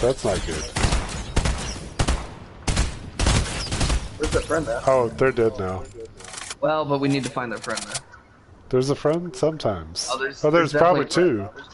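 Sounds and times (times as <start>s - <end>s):
speech: 0.0s - 0.8s, 4.2s - 8.0s, 8.7s - 11.7s
gunfire in a video game: 0.4s - 4.5s.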